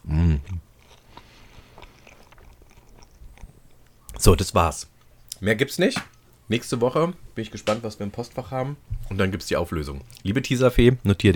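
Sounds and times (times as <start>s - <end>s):
biting into and wet crunchy chewing of food: 0.3s - 4.2s
speech: 4.2s - 11.3s.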